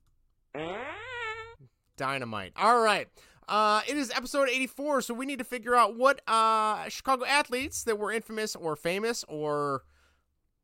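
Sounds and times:
fart sound effect: 0.5s - 1.6s
speech: 2.0s - 9.9s.

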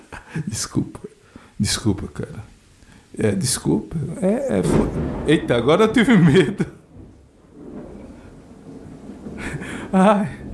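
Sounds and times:
speech: 0.4s - 2.6s, 3.2s - 6.8s, 9.9s - 10.4s
deep rolling thunder: 4.0s - 10.5s
laughter: 6.1s - 6.8s.

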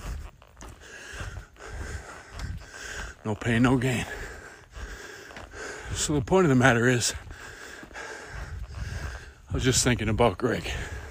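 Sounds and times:
heavy labored breathing of someone walking up a big hill: 0.0s - 11.0s
speech: 3.2s - 4.2s, 6.0s - 7.2s, 9.6s - 10.9s.

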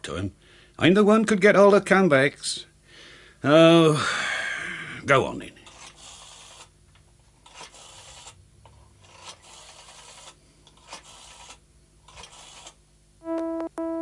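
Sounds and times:
speech: 0.1s - 2.7s, 3.4s - 4.3s, 5.0s - 5.6s
rotary telephone dial whirring: 5.6s - 6.7s, 7.4s - 12.8s
loud telephone ringing tone: 13.2s - 14.0s.

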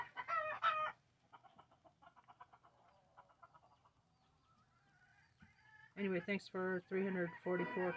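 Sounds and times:
agitated chickens squawking and clucking: 0.0s - 7.9s
speech: 6.0s - 7.9s.

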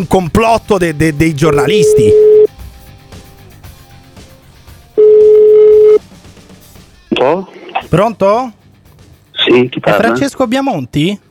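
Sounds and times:
speech: 0.0s - 2.3s, 8.0s - 8.6s, 9.5s - 11.2s
telephone ringback tone on an outgoing call: 1.8s - 2.5s, 5.0s - 6.0s.

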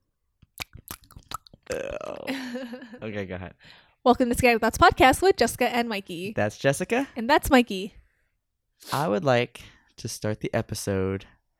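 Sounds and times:
wet mouth smacks and clicks from pretend chewing boba: 0.4s - 1.8s
speech: 1.7s - 8.0s, 8.8s - 11.4s
laughter: 2.2s - 3.0s.

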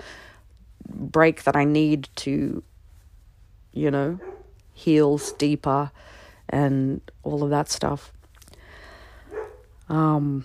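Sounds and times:
speech: 1.2s - 2.7s, 3.7s - 8.2s, 9.9s - 10.4s
dog barking: 4.2s - 4.6s, 9.3s - 9.7s
dog yelping: 9.3s - 9.7s.

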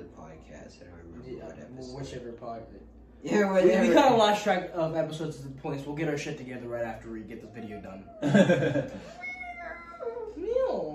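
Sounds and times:
speech: 0.4s - 9.2s
laughter: 8.2s - 9.2s
cat meowing: 9.0s - 10.4s.

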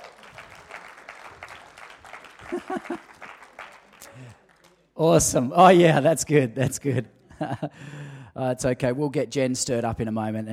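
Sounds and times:
people cheering: 0.0s - 4.9s
room full of people applauding: 0.0s - 5.0s
laughter: 2.1s - 4.3s, 6.6s - 7.8s
speech: 2.5s - 3.2s, 5.0s - 10.5s.

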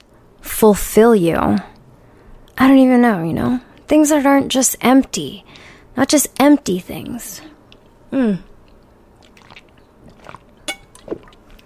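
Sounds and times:
speech: 0.6s - 1.7s, 2.6s - 7.5s, 8.1s - 8.5s
wet gulping and throat noises: 8.4s - 11.6s
person choking on a sip of water: 9.3s - 11.4s.

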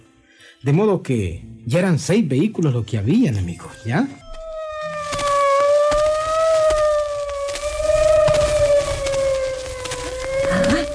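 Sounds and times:
speech: 0.6s - 4.2s
big white ambulance siren wailing in a village: 4.0s - 10.9s
crackles and clicks: 4.2s - 10.9s.

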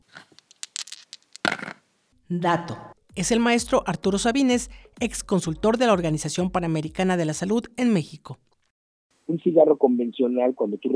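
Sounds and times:
dice rattling and tumbling across a surface: 0.3s - 1.8s
speech: 2.3s - 8.5s, 9.3s - 10.9s.

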